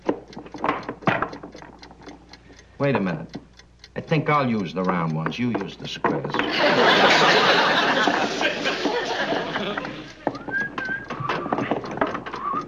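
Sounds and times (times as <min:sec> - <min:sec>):
speech: 0:02.8 - 0:03.4, 0:04.1 - 0:08.7
laughter: 0:06.4 - 0:10.6
person whistling a short wavering tune: 0:10.4 - 0:11.6, 0:12.4 - 0:12.6.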